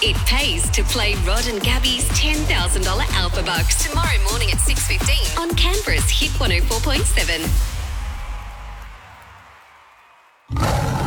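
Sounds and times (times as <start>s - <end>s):
speech: 0.0s - 7.7s
big cat roaring: 10.5s - 11.0s.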